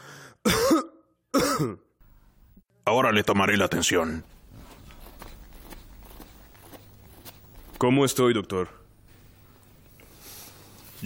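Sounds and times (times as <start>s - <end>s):
person coughing at a doctor's request: 0.4s - 1.9s
speech: 1.6s - 1.9s, 2.9s - 4.4s, 7.8s - 8.8s.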